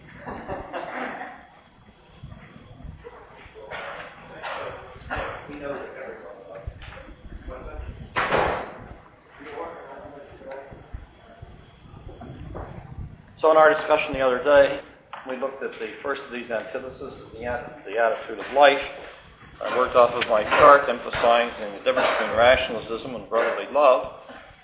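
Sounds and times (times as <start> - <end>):
laughter: 0.1 - 1.6
door thumping shut: 8.1 - 8.9
speech: 13.4 - 19.0, 19.6 - 24.2.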